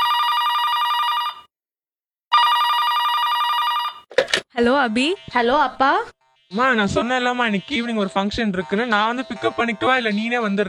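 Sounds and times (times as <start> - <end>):
telephone ringing with an incoming call: 0.0 - 1.5, 2.3 - 4.5
speech: 4.6 - 10.6.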